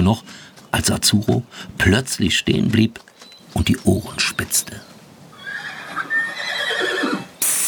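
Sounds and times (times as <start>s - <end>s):
speech: 0.0s - 5.0s
horse neighing: 5.3s - 7.4s
burst of broadband noise: 7.4s - 7.6s.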